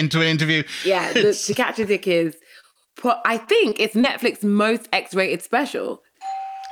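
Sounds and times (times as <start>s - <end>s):
speech: 0.0s - 6.0s
electronic doorbell chime: 6.2s - 6.7s.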